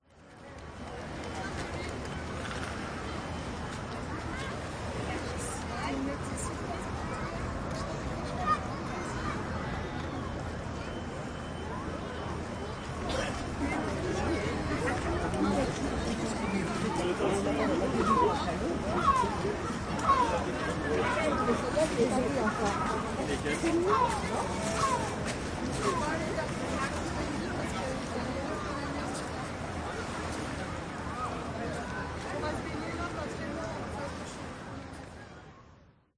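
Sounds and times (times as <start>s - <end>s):
beach promenade ambience in a town centre: 0.0s - 36.1s.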